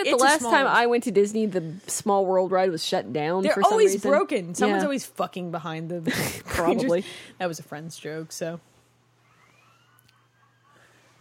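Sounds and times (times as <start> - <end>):
speech: 0.0 - 8.7
recorded siren wailing: 9.2 - 11.1.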